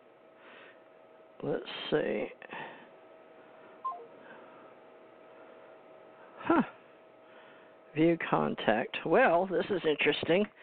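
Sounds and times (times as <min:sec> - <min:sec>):
speech: 0:01.4 - 0:02.6, 0:08.0 - 0:10.6
hissy phone-line background: 0:03.8 - 0:04.1
electronic keypad beep as a Connecticut phone number is dialed: 0:03.9 - 0:04.1.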